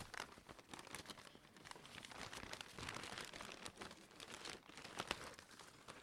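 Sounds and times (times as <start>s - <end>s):
rummaging through a bag for pens: 0.0s - 6.0s.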